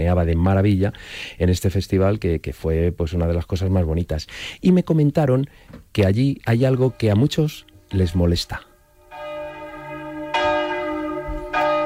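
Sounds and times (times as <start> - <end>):
speech: 0.0 - 8.7
village church bells ringing: 6.6 - 11.8.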